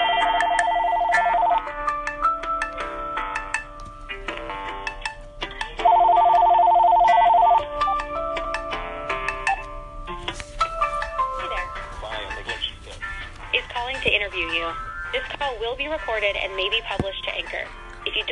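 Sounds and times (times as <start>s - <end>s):
outgoing phone call ringing tone: 0.0s - 1.8s, 5.8s - 8.1s
music: 0.0s - 18.3s.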